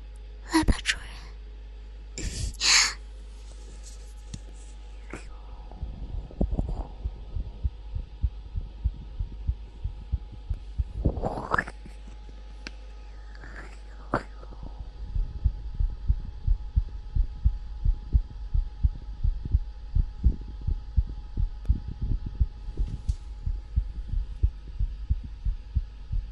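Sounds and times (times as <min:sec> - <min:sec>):
faint hum: 0:00.0 - 0:26.2
rapid heartbeat: 0:05.2 - 0:11.7, 0:14.2 - 0:26.2.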